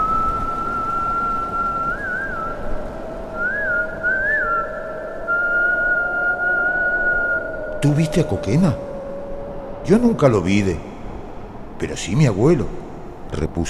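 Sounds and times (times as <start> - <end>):
long steady whistled tone: 0.0 - 10.0
continuous breathy hiss: 0.0 - 13.6
speech: 7.8 - 8.9, 9.8 - 10.9, 11.8 - 13.6.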